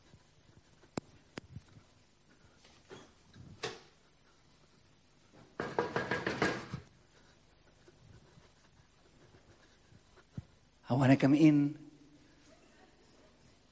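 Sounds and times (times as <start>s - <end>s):
knocking on a door: 5.6s - 6.9s
speech: 10.9s - 11.8s.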